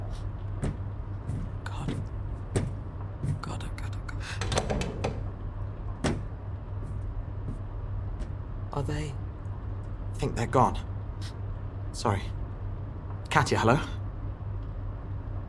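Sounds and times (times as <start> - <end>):
steady low hum: 0.0 - 15.4
door being handled and shut with knocks, clunks and rattles: 4.3 - 6.4
speech: 10.4 - 10.9, 12.0 - 12.4, 13.4 - 14.0.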